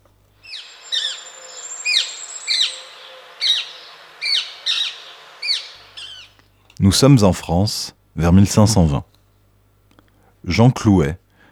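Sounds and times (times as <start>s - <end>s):
rose-ringed parakeet screeching calls: 0.4s - 6.4s
speech: 6.8s - 9.1s, 10.5s - 11.2s.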